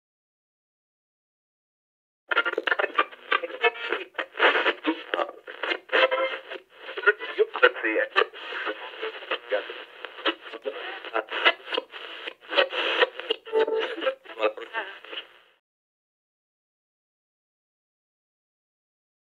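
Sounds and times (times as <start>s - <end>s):
radio tuning: 2.3s - 15.6s.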